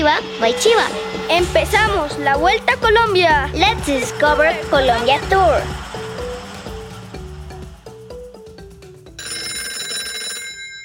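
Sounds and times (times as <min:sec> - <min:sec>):
speech: 0:00.0 - 0:05.8
rhythmic run of melodic musical notes: 0:00.0 - 0:09.4
telephone ringing for an incoming call: 0:09.1 - 0:10.8.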